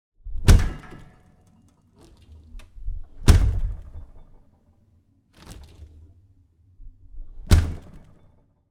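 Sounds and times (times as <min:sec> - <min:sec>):
refrigerator door closing in a kitchen: 0:00.4 - 0:01.4, 0:02.0 - 0:04.4, 0:06.8 - 0:08.4.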